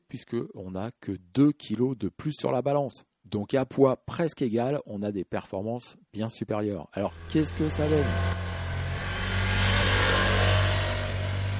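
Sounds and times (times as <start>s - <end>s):
speech: 0.1s - 8.5s
car engine revving: 7.0s - 11.5s.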